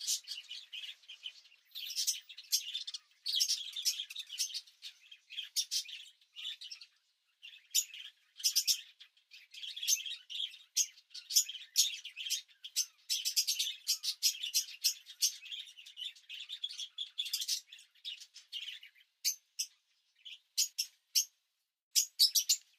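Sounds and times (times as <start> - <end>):
bird chirping: 0.0 - 22.7.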